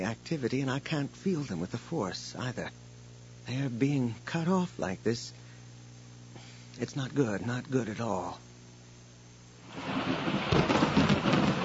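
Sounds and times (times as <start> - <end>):
speech: 0.0 - 2.8, 3.4 - 5.4, 6.8 - 8.4, 9.7 - 10.2
steady rain: 9.6 - 11.6
thunder rumbling during a storm: 9.7 - 11.6.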